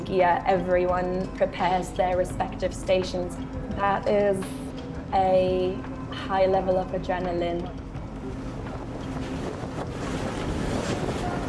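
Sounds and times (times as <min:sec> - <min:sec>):
speech: 0:00.1 - 0:07.8
open-sea wind in the central Mediterranean: 0:07.6 - 0:11.4
gusty wind buffeting on the microphone: 0:08.0 - 0:11.4
waves slapping against the hull of a rescue ship: 0:08.2 - 0:11.4.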